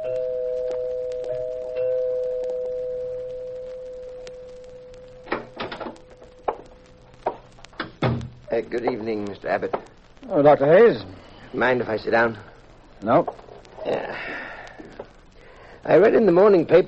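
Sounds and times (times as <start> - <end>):
home doorbell ringing with one long steady tone: 0.0 - 4.0
speech: 8.6 - 14.0, 15.9 - 16.8.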